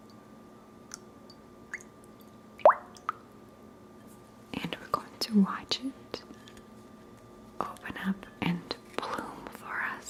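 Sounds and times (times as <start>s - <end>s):
faint hum: 0.0s - 10.0s
water dripping and plopping: 0.9s - 1.9s, 2.6s - 3.2s
speech: 5.3s - 6.0s.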